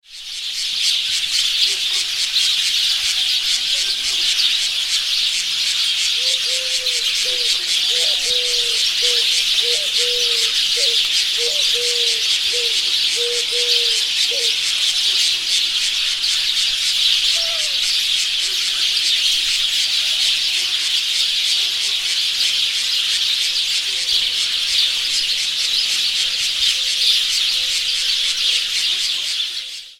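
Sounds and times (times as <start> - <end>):
loud birds ringtone: 0.0 - 29.9.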